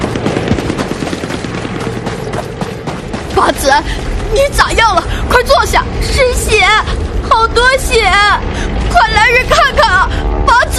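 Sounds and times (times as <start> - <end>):
dense machine-gun fire at a ferry crossing during a battle: 0.0 - 2.9
speech: 3.4 - 10.7.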